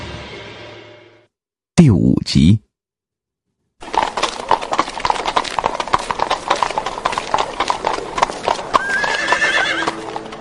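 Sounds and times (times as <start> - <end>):
speech: 1.8 - 2.6
hooves clip-clopping as a horse pulls a carriage: 3.8 - 10.4
horse whinnying: 8.7 - 10.4.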